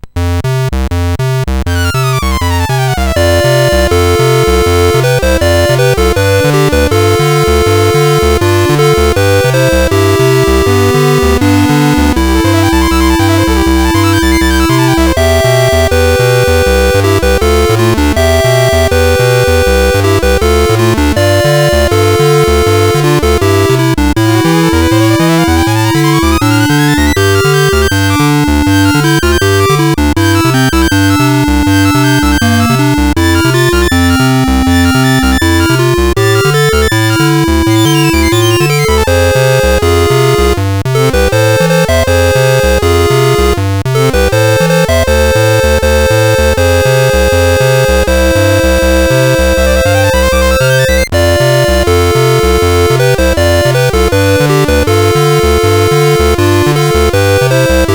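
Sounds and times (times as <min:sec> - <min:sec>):
SID CSG8580R5 sound chip music: 0:00.0 - 0:57.9.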